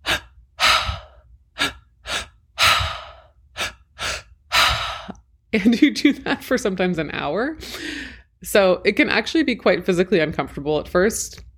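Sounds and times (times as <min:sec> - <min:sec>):
rhythmic breathwork breathing in through the mouth into belly and chest: 0:00.0 - 0:05.2
speech: 0:05.5 - 0:11.5.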